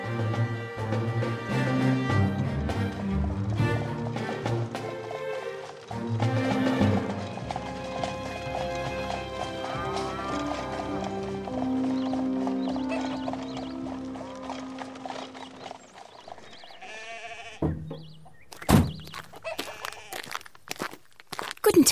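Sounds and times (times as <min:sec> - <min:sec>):
music: 0:00.0 - 0:15.7
horse hooves clip-clopping as a horse-drawn carriage drives along: 0:00.0 - 0:21.8.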